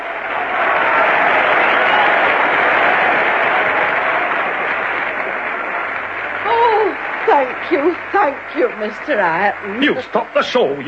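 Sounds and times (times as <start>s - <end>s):
large audience applause: 0.0s - 10.8s
speech: 7.7s - 10.8s.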